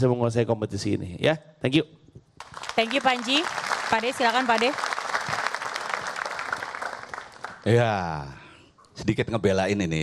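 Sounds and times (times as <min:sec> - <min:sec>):
speech: 0:00.0 - 0:04.9, 0:07.6 - 0:08.4, 0:09.0 - 0:10.0
audience applause at a stage competition: 0:02.4 - 0:07.8.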